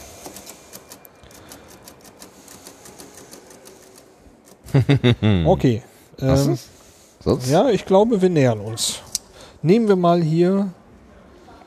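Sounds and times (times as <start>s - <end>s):
mechanical adding machine keys pressed in a computer museum: 0.0s - 4.6s
laughter: 4.6s - 5.6s
speech: 4.7s - 9.0s, 9.6s - 10.8s.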